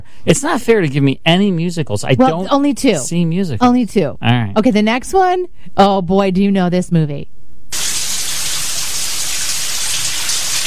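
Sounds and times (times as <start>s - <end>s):
speech: 0.2s - 7.4s
running shower water spraying: 7.7s - 10.6s.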